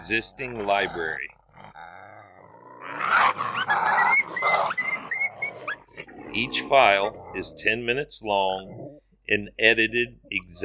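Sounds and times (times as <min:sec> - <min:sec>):
speech: 0:00.1 - 0:01.9, 0:06.4 - 0:10.6
recorded coyote yips whines and yelps from a hunting call: 0:02.9 - 0:06.5.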